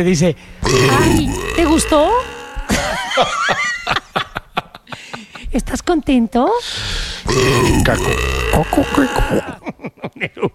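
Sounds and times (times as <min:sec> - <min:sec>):
speech: 0:00.0 - 0:02.4, 0:03.2 - 0:04.0, 0:05.6 - 0:10.5
long loud rumbling burp: 0:00.6 - 0:03.1, 0:07.2 - 0:09.6
short rhythmic vocal bursts of laughter: 0:02.7 - 0:05.5, 0:09.5 - 0:10.5.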